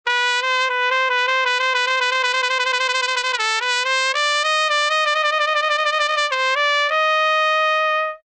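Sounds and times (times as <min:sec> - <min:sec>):
trumpet warble: 0:00.1 - 0:08.2.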